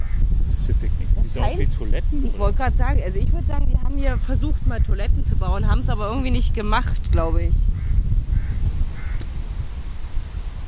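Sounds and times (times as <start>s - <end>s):
steady low rumble of wind: 0.0s - 10.6s
speech: 1.6s - 7.7s
crows cawing: 7.8s - 9.2s.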